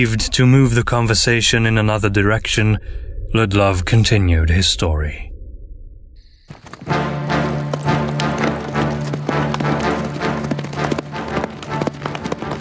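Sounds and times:
speech: 0.0s - 5.3s
low sustained droning tone: 0.0s - 6.3s
hoofbeats of a horse galloping through the night: 6.3s - 12.5s.

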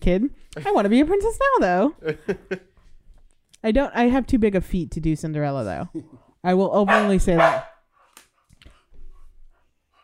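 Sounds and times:
speech: 0.0s - 2.7s, 3.6s - 7.7s
dog giving short sharp barks: 6.9s - 7.8s.

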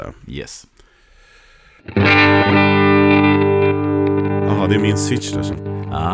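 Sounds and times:
speech: 0.0s - 0.7s, 1.8s - 2.6s, 4.7s - 6.1s
distorted electric guitar chord through amp-simulator pedal: 1.9s - 6.1s.

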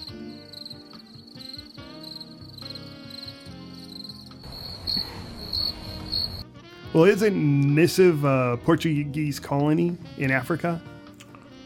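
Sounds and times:
crickets chirping: 0.0s - 6.4s
speech: 7.0s - 10.9s.

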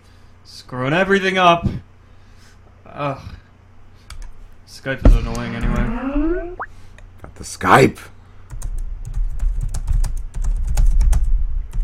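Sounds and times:
speech: 0.5s - 1.8s, 3.0s - 3.4s, 4.8s - 6.2s, 7.3s - 8.1s
typing on a computer keyboard: 8.5s - 11.8s.

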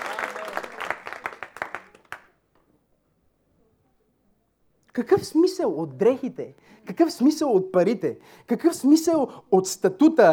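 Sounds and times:
audience applauding: 0.0s - 2.3s
speech: 5.0s - 10.3s.

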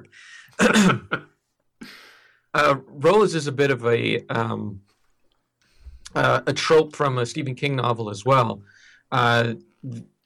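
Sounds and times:
speech: 0.0s - 1.3s, 2.6s - 4.9s, 6.1s - 10.1s
person clearing throat: 0.6s - 1.1s.

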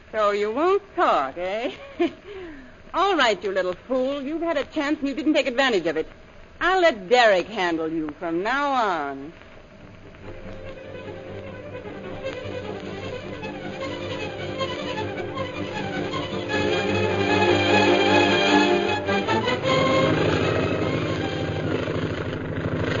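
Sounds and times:
speech: 0.1s - 9.4s
propeller airplane engine droning: 9.4s - 22.9s.

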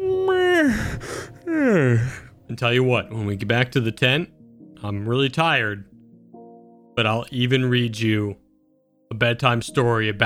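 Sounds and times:
person imitating a drawn-out yawn: 0.0s - 2.3s
speech: 2.6s - 5.9s, 7.0s - 8.4s, 9.1s - 10.2s.

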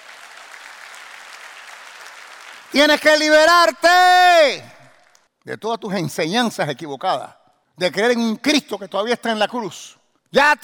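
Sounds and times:
audience applauding: 0.0s - 2.8s
speech: 2.7s - 4.7s, 5.5s - 10.6s.

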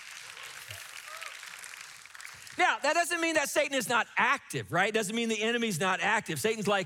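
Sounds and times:
audience clapping during a sermon: 0.0s - 2.8s
speech: 2.6s - 6.8s.

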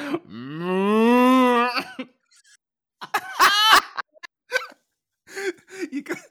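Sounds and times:
short throaty grunts and cough-like bursts: 0.0s - 1.8s
person imitating a cow with a long moo: 0.2s - 1.8s
laughter: 3.0s - 4.7s.

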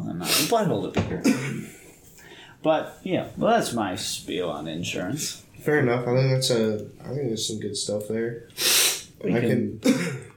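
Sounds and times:
speech: 0.5s - 1.8s, 2.6s - 10.2s
sniffing: 8.6s - 9.2s
throat clearing: 9.8s - 10.3s.

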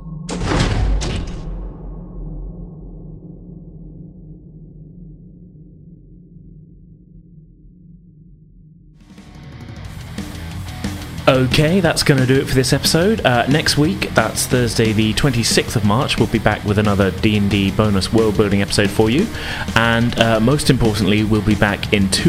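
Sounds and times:
heavy door slamming shut: 0.3s - 1.7s
speech: 11.3s - 22.2s.

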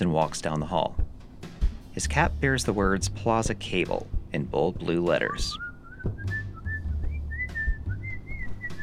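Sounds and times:
speech: 0.0s - 1.0s, 2.0s - 6.3s
man whistling a bouncy cheerful tune while walking down a hallway: 5.4s - 8.8s.

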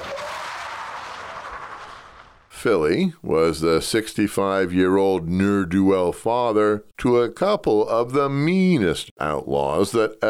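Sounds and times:
pickup truck skidding to a stop on a dirt road: 0.0s - 2.5s
speech: 2.6s - 10.2s.

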